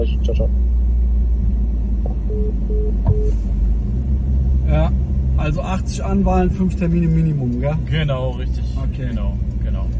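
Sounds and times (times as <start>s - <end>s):
low-pitched car engine rumble inside a car: 0.0s - 9.9s
speech: 0.3s - 0.8s, 5.9s - 9.9s
short electronic beeps: 2.1s - 3.4s.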